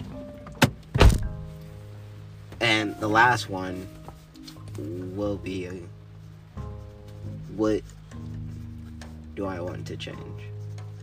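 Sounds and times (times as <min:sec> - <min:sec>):
door thudding shut: 0:00.6 - 0:01.4
speech: 0:02.8 - 0:04.0, 0:04.8 - 0:06.0, 0:07.6 - 0:08.0, 0:09.4 - 0:10.5.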